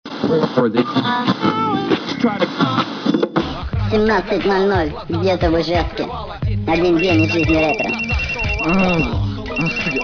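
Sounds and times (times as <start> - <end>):
speech: 0.3 - 3.0, 3.9 - 10.0
phone ringtone playing a short melodic tune: 6.7 - 10.0.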